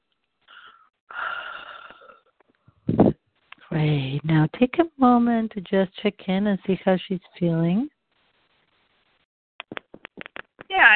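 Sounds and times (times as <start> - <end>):
person taking a raspy slightly wheezy deep breath: 0.5 - 2.2
speech: 3.7 - 7.9.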